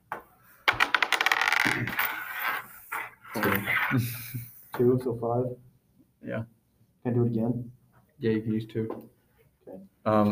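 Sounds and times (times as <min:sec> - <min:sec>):
ten-sided die rolling across a tabletop: 0:00.7 - 0:02.7
speech: 0:03.4 - 0:10.3.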